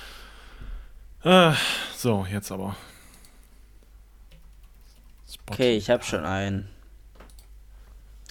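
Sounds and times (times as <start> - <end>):
low steady hum: 0.0 - 8.3
speech: 1.2 - 3.0, 5.5 - 6.8
typing on a computer keyboard: 4.3 - 5.3, 7.2 - 7.5.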